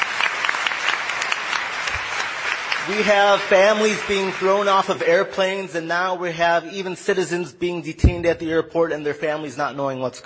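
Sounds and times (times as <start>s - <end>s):
audience applause: 0.0s - 5.2s
speech: 2.9s - 10.2s.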